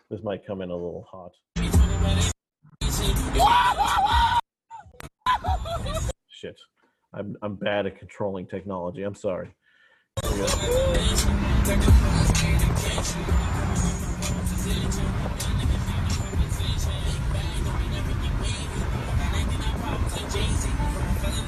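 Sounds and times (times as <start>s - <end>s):
speech: 0.1s - 4.4s, 5.8s - 9.6s, 10.4s - 14.0s
car engine and road noise driving recklessly through busy traffic: 1.6s - 4.0s, 10.2s - 21.4s
other vehicles rumbling: 10.2s - 21.4s.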